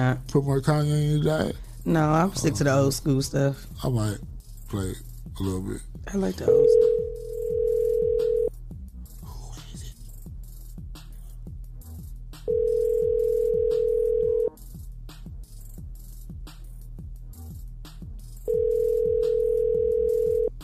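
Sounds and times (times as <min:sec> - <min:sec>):
speech: 0:00.0 - 0:07.0
phone call ringback tones: 0:06.5 - 0:08.5, 0:12.5 - 0:14.5, 0:18.5 - 0:20.5.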